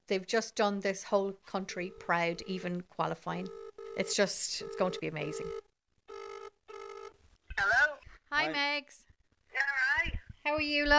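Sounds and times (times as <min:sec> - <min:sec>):
speech: 0:00.1 - 0:05.7, 0:08.4 - 0:09.7, 0:10.4 - 0:10.9
telephone ringing with a buzzing electronic trill: 0:01.6 - 0:02.7, 0:03.4 - 0:07.2.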